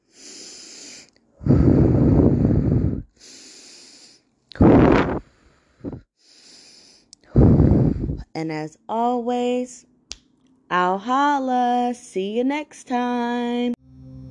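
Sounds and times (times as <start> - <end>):
deep breaths during an exercise for coping with emotions: 0.0 - 8.2
speech: 8.4 - 9.9, 10.7 - 13.8.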